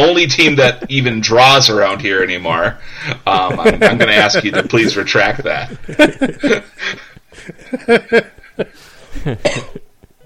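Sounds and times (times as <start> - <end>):
speech: 0.0 - 9.8
person laughing: 3.1 - 9.6
harsh repeated coughs after laughing: 9.2 - 9.9.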